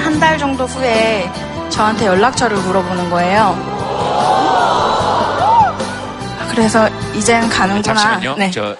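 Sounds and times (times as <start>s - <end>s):
speech: 0.1s - 4.8s, 6.6s - 8.7s
crowd of people oohing and exclaiming: 3.5s - 6.4s.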